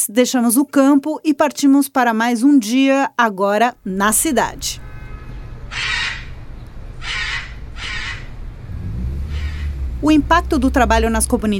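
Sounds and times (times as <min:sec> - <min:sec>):
speech: 0:00.0 - 0:04.9, 0:10.0 - 0:11.5
steady low rumble of noise: 0:03.8 - 0:11.5
blue-and-yellow or red macaw squawks at nests in Campo Grande Brazil: 0:05.7 - 0:06.4, 0:07.0 - 0:08.4, 0:09.3 - 0:09.7.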